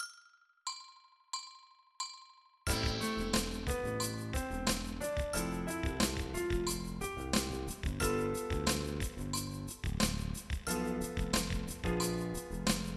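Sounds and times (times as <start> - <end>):
backing track: 2.7 - 12.9.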